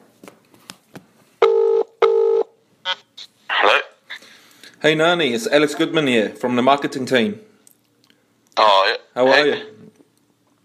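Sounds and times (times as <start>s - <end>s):
telephone dialing tones placing a call: 1.4s - 2.5s
speech: 4.8s - 7.5s, 9.1s - 9.7s.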